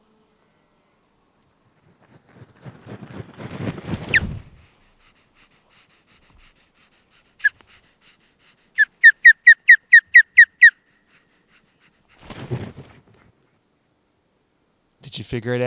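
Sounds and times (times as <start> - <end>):
breathy rustling noise: 1.7 - 9.0, 10.9 - 13.6
osprey calling on arrival at its nest after spring migration: 8.8 - 10.9
speech: 15.3 - 15.6.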